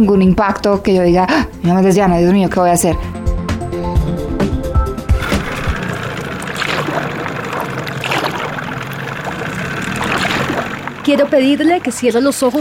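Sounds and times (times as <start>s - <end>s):
speech: 0.0s - 3.2s, 11.1s - 12.5s
motorboat engine droning on a jungle river: 4.0s - 12.5s
continuous wash of rushing spray and splashing: 5.2s - 12.0s.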